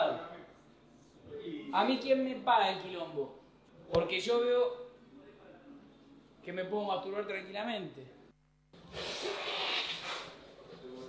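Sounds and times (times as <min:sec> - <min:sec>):
speech: 0:01.7 - 0:04.8, 0:06.4 - 0:08.2
drawn-out sniffle through a nose congested by a cold: 0:08.8 - 0:10.4.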